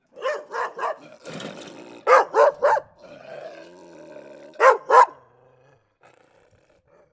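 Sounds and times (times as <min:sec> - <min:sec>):
angry dog: 0:00.1 - 0:01.4, 0:02.0 - 0:03.5, 0:04.5 - 0:05.3.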